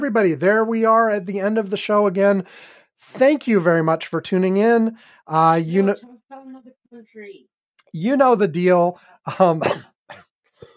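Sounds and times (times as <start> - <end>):
speech: 0.0 - 10.2
person coughing into the microphone: 9.3 - 10.7.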